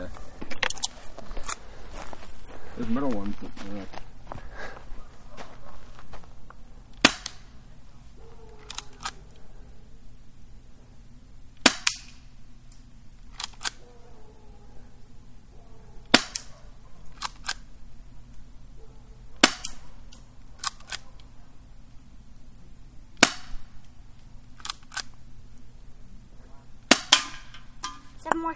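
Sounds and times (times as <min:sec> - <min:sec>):
low steady hum: 0:00.0 - 0:28.5
speech: 0:02.8 - 0:04.0
airsoft gun firing 0.2 gram hard plastic BBs: 0:07.0 - 0:07.6, 0:11.6 - 0:12.2, 0:16.0 - 0:16.5, 0:19.4 - 0:19.9, 0:23.2 - 0:23.8, 0:26.8 - 0:28.0.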